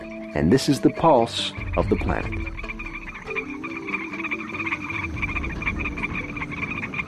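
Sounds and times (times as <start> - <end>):
chorus of frogs croaking: 0.0 - 7.0
speech: 0.4 - 2.7.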